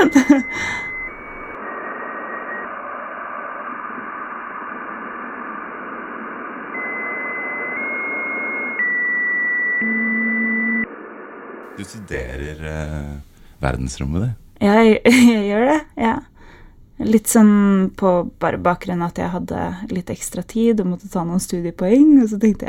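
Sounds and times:
hissing static: 0.0 - 8.8, 10.9 - 14.3
electronic tones humming: 0.0 - 13.1
speech: 11.9 - 16.3, 17.0 - 22.6.

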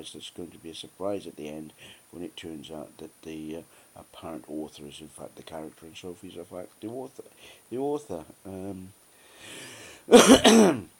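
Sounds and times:
speech: 0.0 - 10.9
faint breathy noise: 1.7 - 2.1, 3.6 - 4.0, 7.3 - 7.7, 9.1 - 10.1
cough: 10.1 - 10.9.

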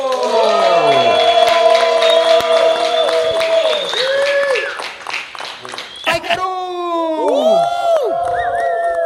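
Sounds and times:
crowd cheering and whooping: 0.0 - 5.0, 7.0 - 9.0
audience clapping: 0.0 - 9.0.

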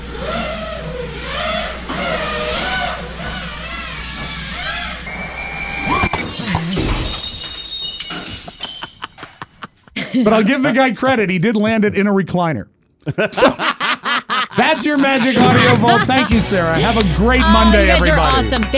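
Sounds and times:
drone propeller whine: 0.0 - 6.1, 15.4 - 18.7
sliding glass door shattering: 6.1 - 9.5
glass shards tinkling: 6.2 - 9.8
laughter: 9.1 - 11.0, 13.0 - 18.7
speech: 10.2 - 13.7, 14.6 - 18.7.

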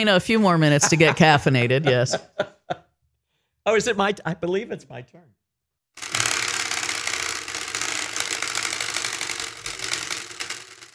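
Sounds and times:
speech: 0.0 - 2.8, 3.7 - 5.4
laughter: 0.3 - 2.9
spinning prize wheel ticking: 6.0 - 10.9.

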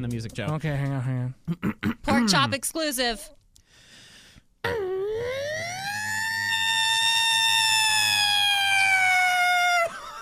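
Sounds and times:
speech: 0.0 - 3.4, 4.6 - 4.9
person imitating a Federal fire truck siren with their voice: 4.7 - 9.9.

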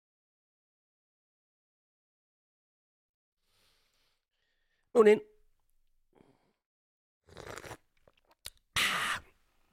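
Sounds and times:
speech: 5.0 - 5.3
loud noisy slurps of tea against the microphone: 7.2 - 8.2
faint clicks and mouth sounds: 7.3 - 8.8.

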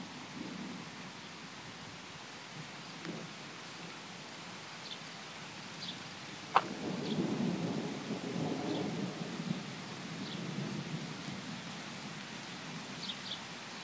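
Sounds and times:
heavy rain in a thunderstorm: 0.0 - 13.8
thunder crack rolling into a long low rumble: 6.5 - 11.6.

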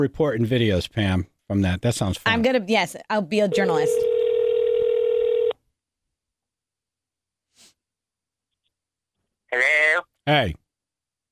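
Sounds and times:
speech: 0.0 - 4.1, 9.5 - 10.6
telephone tone over speakerphone as a call is placed: 3.5 - 5.6.

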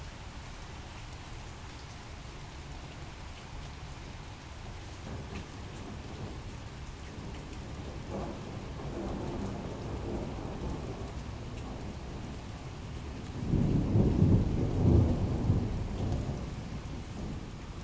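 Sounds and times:
steady rain: 0.0 - 17.8
thunder from lightning about 3 kilometers away rumbling: 4.0 - 17.8.

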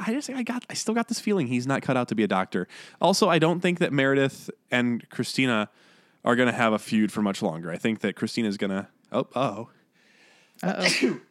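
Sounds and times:
speech: 0.0 - 9.8, 10.6 - 11.2
person sneezing: 10.6 - 11.2.

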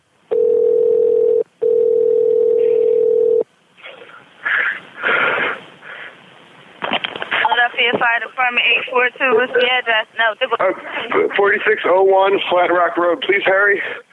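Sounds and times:
telephone dial tone before an emergency call to a fire department: 0.3 - 3.4
rustling crackly phone-line noise: 0.3 - 14.1
speech: 8.2 - 14.0.

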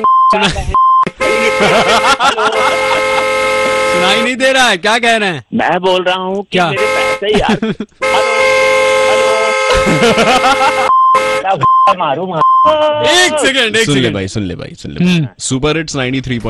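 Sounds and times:
speech: 0.0 - 0.8, 4.0 - 8.6, 9.8 - 16.4
short even beeps: 0.0 - 1.6, 10.8 - 12.9
laughter: 0.4 - 4.0, 7.2 - 14.1
vehicle horn honking: 1.1 - 4.5, 6.7 - 7.4, 8.0 - 12.0.

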